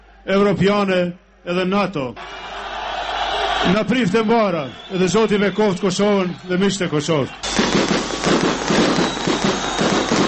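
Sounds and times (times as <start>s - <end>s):
speech: 0.2s - 2.5s, 3.6s - 7.8s
fireworks going off in Kosovo to celebrate a homecoming: 7.4s - 10.2s.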